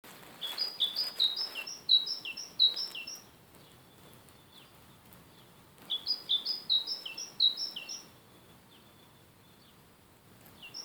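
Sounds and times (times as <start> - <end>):
great tit Parus major giving bright alternating high-low notes: 0.4 - 3.3, 5.9 - 8.1.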